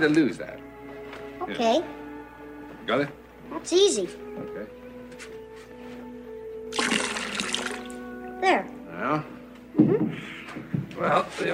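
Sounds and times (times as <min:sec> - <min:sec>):
speech: 0:00.0 - 0:00.7, 0:01.5 - 0:02.0, 0:02.9 - 0:05.3, 0:08.4 - 0:11.5
water pouring out of a container: 0:06.7 - 0:08.0.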